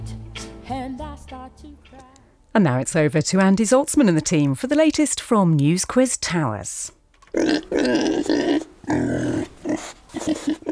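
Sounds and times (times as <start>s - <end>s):
speech: 0.7s - 10.7s
pig-like grunts and snorts: 7.3s - 10.7s.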